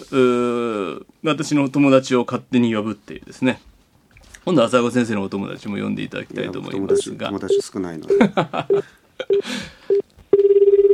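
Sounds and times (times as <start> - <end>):
speech: 0.1 - 0.4, 1.2 - 3.7, 4.4 - 10.1
telephone keypad beeps: 6.9 - 8.8
telephone ringing tones: 6.9 - 10.9
laughter: 8.0 - 9.0.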